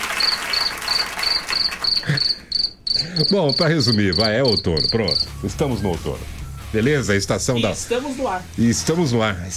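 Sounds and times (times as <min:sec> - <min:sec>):
crickets chirping: 0:00.2 - 0:05.4
speech: 0:03.2 - 0:09.5.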